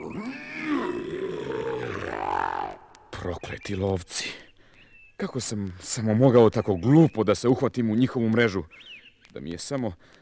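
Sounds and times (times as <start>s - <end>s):
big lion roaring: 0.0s - 2.8s
speech: 3.2s - 4.4s, 5.2s - 10.2s.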